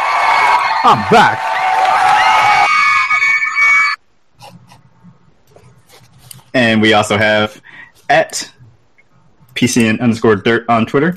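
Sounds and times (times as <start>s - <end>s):
women screaming and cheering sound effect: 0.0s - 4.0s
speech: 0.8s - 1.5s, 6.6s - 8.6s, 9.6s - 11.1s.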